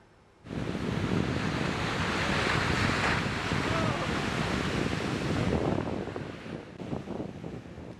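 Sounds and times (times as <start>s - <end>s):
buffeting wind noise: 0.4s - 7.9s
huge ocean swells and surf from a hurricane crashing at Newport Beach, California: 0.5s - 7.9s
water splashes: 0.6s - 6.5s.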